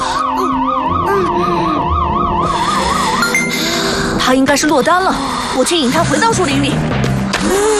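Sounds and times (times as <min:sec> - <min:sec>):
heart rate monitor alarm wailing: 0:00.1 - 0:04.0
speech: 0:04.3 - 0:07.7.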